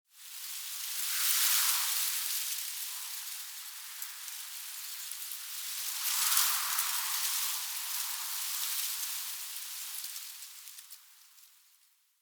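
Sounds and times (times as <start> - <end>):
relaxed gusts of wind in pine tree leaves: 0.1 - 12.0.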